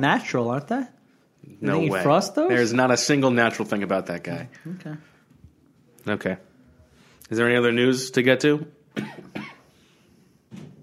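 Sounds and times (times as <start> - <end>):
speech: 0.0 - 5.1, 6.0 - 6.5, 7.3 - 9.3
person coughing: 9.0 - 9.7.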